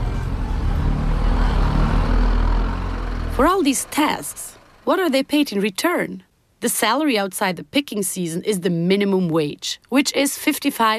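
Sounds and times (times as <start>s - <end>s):
bus engine rumble leaving a farm: 0.0s - 6.0s
speech: 3.4s - 10.9s.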